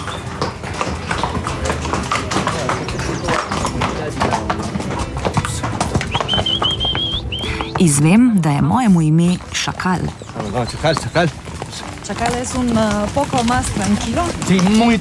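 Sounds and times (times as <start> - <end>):
busy outdoor background in a national park: 0.0 - 14.9
horse hooves clip-clopping at a walking pace in a national park: 0.0 - 14.9
high whistle-like tone: 6.1 - 7.5
speech: 7.8 - 11.4, 12.1 - 14.9.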